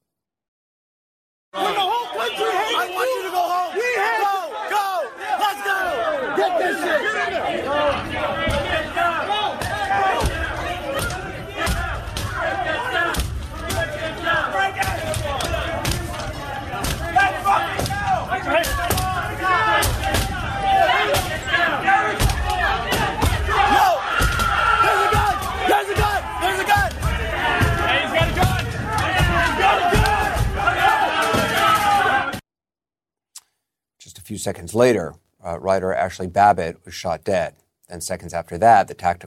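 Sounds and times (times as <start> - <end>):
mob of rioters shouting and yelling: 1.6 - 32.4
speech: 34.3 - 39.2.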